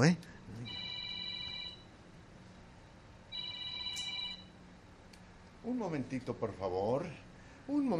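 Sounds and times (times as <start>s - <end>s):
speech: 0.0s - 0.4s, 5.6s - 7.9s
mobile phone ringing with electronic tones: 0.7s - 1.9s, 3.3s - 4.5s.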